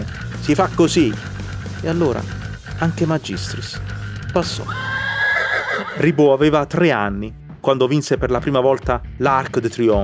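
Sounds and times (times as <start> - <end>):
speech: 0.5 - 4.9, 6.0 - 10.0
horse neighing: 4.4 - 6.4.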